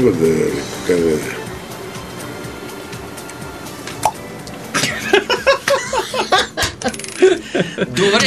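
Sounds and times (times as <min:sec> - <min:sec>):
speech: 0:00.0 - 0:01.4, 0:07.6 - 0:08.2
people giggling and laughing: 0:04.7 - 0:08.2
coins dropping and clinking during a magic trick: 0:06.6 - 0:07.4.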